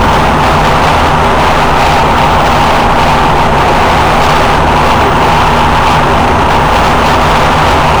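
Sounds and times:
F-15 Eagle fighter jet roar: 0:00.0 - 0:07.9.

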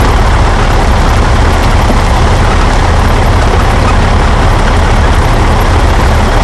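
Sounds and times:
truck moving: 0:00.0 - 0:06.4.

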